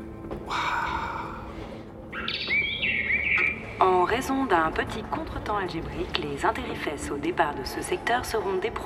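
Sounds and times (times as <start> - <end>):
Western Orphean warbler singing: 2.1 - 3.9
speech: 3.8 - 8.8.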